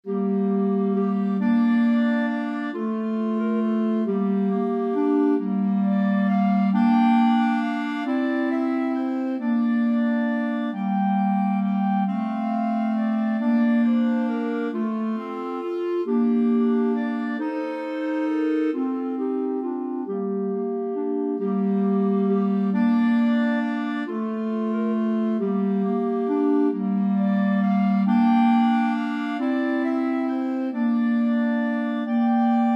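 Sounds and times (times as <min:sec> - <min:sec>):
clarinet trio: 0:00.0 - 0:32.7.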